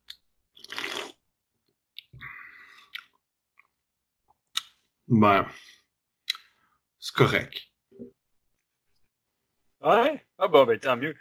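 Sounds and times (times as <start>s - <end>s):
gulp of non-alcoholic beer: 0.6s - 1.2s
slurping sip of non-alcoholic beer: 0.6s - 1.2s
small wet mouth clicks: 2.8s - 4.8s, 6.2s - 6.5s
speech: 5.1s - 5.8s, 7.2s - 8.2s, 9.8s - 11.2s.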